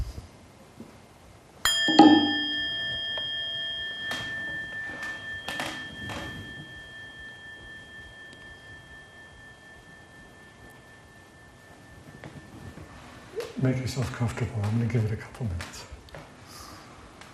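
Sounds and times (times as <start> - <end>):
single bell struck and ringing: 1.7 - 14.1
speech: 13.6 - 15.9.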